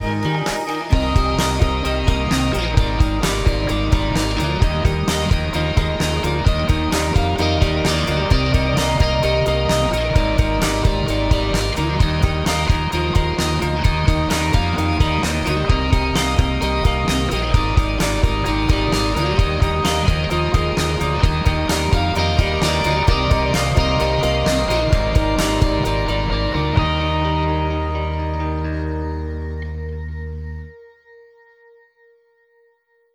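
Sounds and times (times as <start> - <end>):
synth pad: 0.0 - 30.9.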